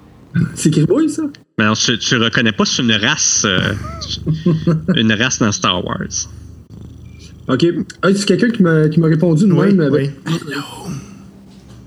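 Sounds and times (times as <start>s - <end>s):
speech: 0.3s - 6.4s, 7.5s - 11.0s
voice imitating a purring cat-like creature: 3.5s - 9.0s.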